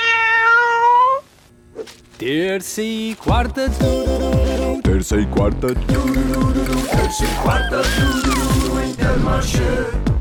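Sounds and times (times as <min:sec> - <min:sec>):
cat meowing: 0:00.0 - 0:01.2
speech: 0:02.2 - 0:10.1.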